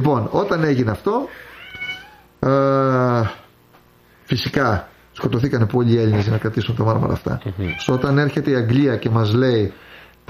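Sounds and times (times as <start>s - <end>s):
speech: 0.0s - 1.5s, 2.4s - 3.4s, 4.3s - 10.2s
cat meowing: 1.5s - 2.3s, 7.6s - 8.4s.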